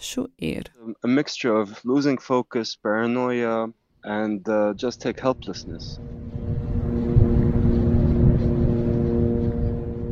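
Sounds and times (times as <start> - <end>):
speech: 0.1 - 6.3
drone engine hum with tonal harmonics: 5.3 - 10.0.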